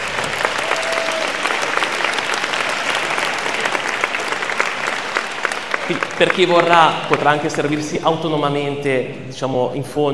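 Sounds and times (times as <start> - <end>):
room full of people clapping: 0.0 - 8.0
speech: 5.9 - 10.1.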